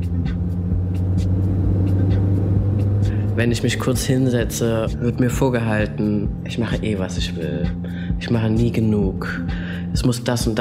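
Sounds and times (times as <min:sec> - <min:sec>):
car engine accelerating onto the motorway: 0:00.0 - 0:06.0
road rumble: 0:00.0 - 0:06.4
speech: 0:03.4 - 0:10.5.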